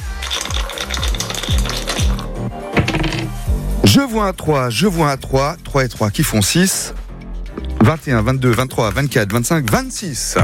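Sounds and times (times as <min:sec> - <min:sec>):
dice clattering across a hard surface: 0:00.0 - 0:03.3
speech: 0:03.9 - 0:07.0, 0:07.8 - 0:10.4.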